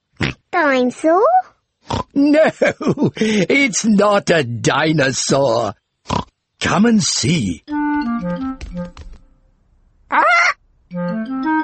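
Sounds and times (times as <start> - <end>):
speech: 0.6 - 9.1
laughter: 2.2 - 3.7
bouncy cheerful music: 7.2 - 9.4, 10.9 - 11.6
pet parrot squawking: 10.1 - 10.6.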